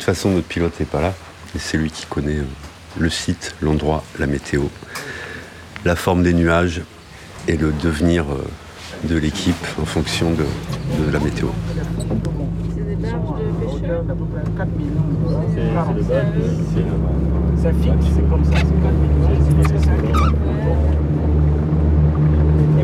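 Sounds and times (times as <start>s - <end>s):
speech: 0.0s - 5.2s, 5.8s - 12.2s, 14.0s - 21.0s
boat engine droning as the boat departs in Gabonese mangroves: 2.7s - 22.8s
voices murmuring: 8.9s - 22.8s.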